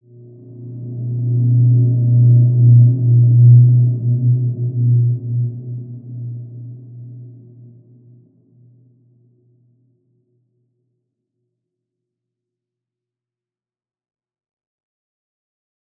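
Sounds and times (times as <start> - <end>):
healing ambient soundscape: 0.1 - 7.9.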